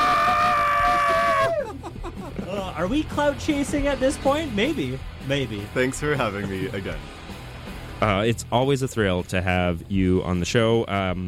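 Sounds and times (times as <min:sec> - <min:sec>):
person screaming at one high steady pitch: 0:00.0 - 0:01.7
laughter: 0:00.6 - 0:03.0
speech: 0:02.8 - 0:07.1, 0:08.0 - 0:11.2.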